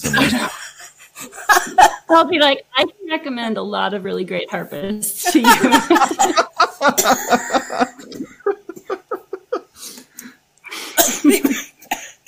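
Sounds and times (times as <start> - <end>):
person coughing harshly: 0.0 - 0.7, 7.0 - 8.4, 10.7 - 12.2
laughter: 0.0 - 2.1, 5.3 - 9.9
speech: 0.1 - 0.6, 2.1 - 8.4.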